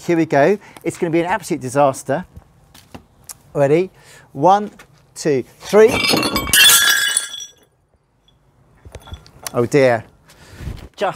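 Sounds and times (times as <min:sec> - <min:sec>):
speech: 0:00.0 - 0:02.4, 0:03.6 - 0:06.5, 0:09.5 - 0:10.1, 0:11.0 - 0:11.1
crockery smashing onto a hard floor: 0:05.8 - 0:07.6.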